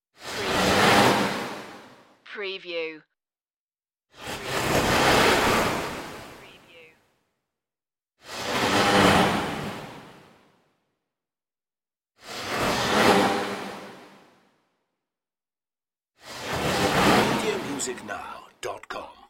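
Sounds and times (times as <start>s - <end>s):
crashing spaceship swooshes: 0.2s - 2.0s, 4.2s - 6.4s, 8.2s - 10.5s, 12.2s - 14.5s, 16.2s - 18.1s.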